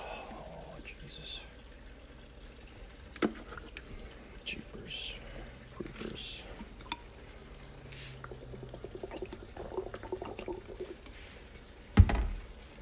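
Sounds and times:
water being poured for tasting: 0.0s - 12.8s.

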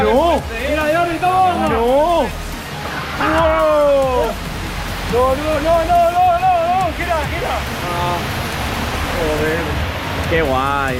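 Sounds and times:
loud excited voices shouting: 0.0s - 4.5s, 5.1s - 7.7s
turbulent river water rushing: 0.0s - 10.9s
speech: 10.3s - 10.9s.

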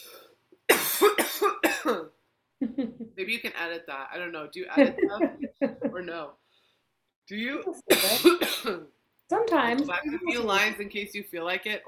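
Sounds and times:
harsh hacking coughs: 0.7s - 2.1s, 7.9s - 8.9s
laughter: 2.6s - 3.2s, 4.8s - 6.0s
speech: 3.2s - 6.4s, 7.3s - 11.8s.

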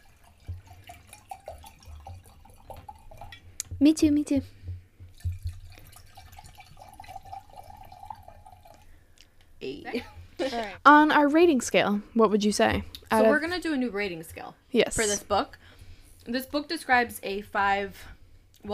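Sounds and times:
fruity drink pouring into a cup: 0.0s - 3.5s, 5.1s - 8.9s
speech: 3.8s - 4.6s, 10.8s - 15.6s, 16.2s - 18.7s.

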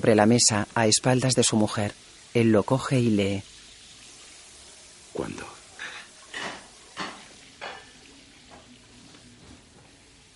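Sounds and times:
speech: 0.0s - 3.6s, 5.2s - 5.5s
crockery clinking and clattering as dishes are cleared up in a kitchen: 5.8s - 8.7s.

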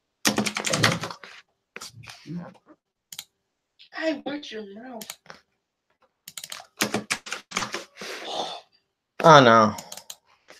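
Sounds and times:
typing on a computer keyboard: 0.2s - 1.2s, 6.3s - 7.9s, 9.7s - 10.2s
speech: 2.3s - 2.8s, 4.0s - 5.3s, 9.2s - 9.8s.

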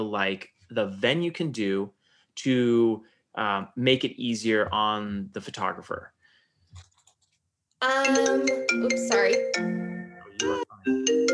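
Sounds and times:
speech: 0.0s - 6.2s, 7.8s - 11.3s
mobile phone ringtone of bright melodic chiming tones: 8.1s - 11.3s.

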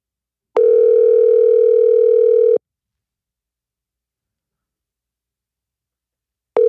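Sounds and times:
US-style phone ringback tone: 0.6s - 2.6s.

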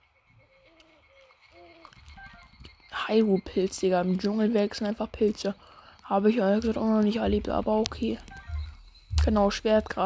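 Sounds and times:
bird cooing and hooting calls in a video game: 0.3s - 4.2s, 8.2s - 9.0s
speech: 3.1s - 8.4s, 9.2s - 10.0s
low ambient bed: 5.0s - 10.0s.

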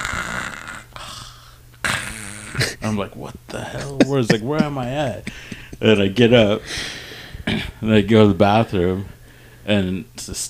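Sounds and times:
voice imitating a snore: 0.0s - 1.2s, 1.8s - 2.8s
speech: 2.5s - 10.4s
laughter: 2.6s - 6.6s.

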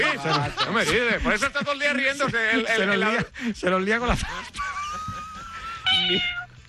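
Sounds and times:
speech: 0.0s - 4.6s, 6.0s - 6.4s
laughter: 0.0s - 6.4s
cat meowing: 5.8s - 6.6s.

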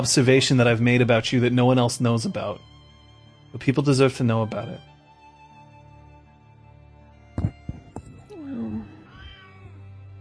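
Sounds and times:
speech: 0.0s - 2.7s, 3.5s - 4.9s
cat meowing: 8.2s - 9.8s.

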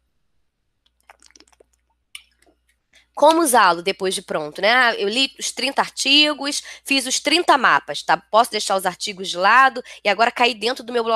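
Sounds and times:
person sipping water: 0.8s - 2.5s
speech: 3.2s - 11.1s.

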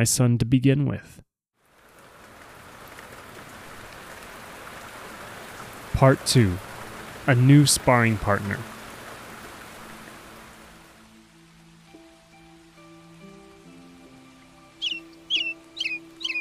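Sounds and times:
speech: 0.0s - 1.2s, 6.0s - 8.7s
soft rain-like hiss: 1.6s - 16.3s
bird chirping: 14.7s - 16.3s.

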